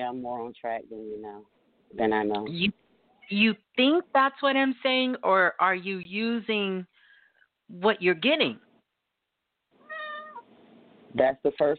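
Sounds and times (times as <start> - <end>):
speech: 0.0 - 6.9, 7.7 - 8.6, 11.1 - 11.7
faint room noise: 0.0 - 11.7
cat meowing: 9.8 - 10.5.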